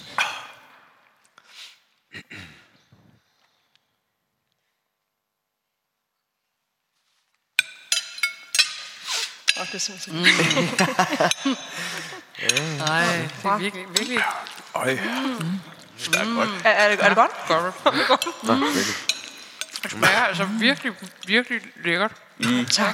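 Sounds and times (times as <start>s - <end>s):
glasses clinking in a toast to a new house: 7.6s - 21.3s
overlapping voices chatting: 9.6s - 11.1s, 12.4s - 19.0s, 19.8s - 22.9s
speech: 9.6s - 19.1s, 19.8s - 22.9s
people laughing: 10.1s - 13.4s, 16.3s - 19.1s.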